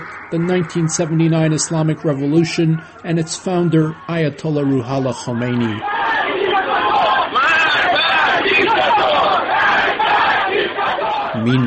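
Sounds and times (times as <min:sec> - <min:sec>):
speech: 0:00.3 - 0:06.0, 0:11.4 - 0:11.6
large protest crowd chanting slogans in unison at a rally in Tehran: 0:05.8 - 0:11.4.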